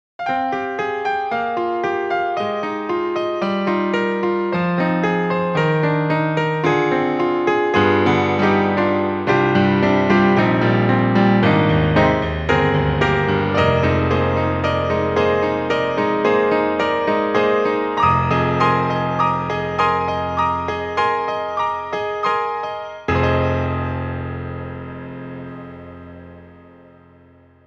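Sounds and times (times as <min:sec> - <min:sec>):
stereo grand piano: 0:00.2 - 0:27.6.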